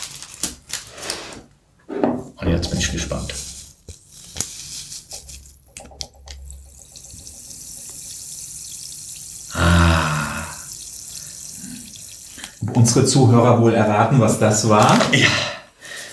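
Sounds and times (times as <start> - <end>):
speech: 2.4 - 3.5, 12.8 - 15.5
water running from a tap into a sink: 2.4 - 15.1.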